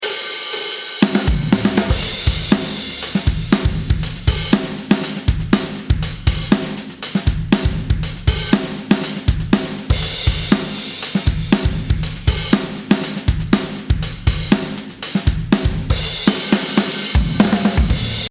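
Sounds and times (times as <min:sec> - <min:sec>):
HX Stomp drum: 0:00.0 - 0:18.2.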